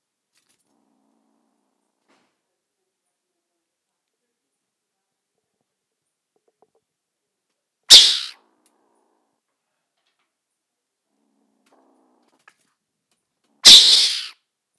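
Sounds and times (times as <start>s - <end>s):
mongoose hissing: 7.9s - 8.3s, 13.6s - 14.3s.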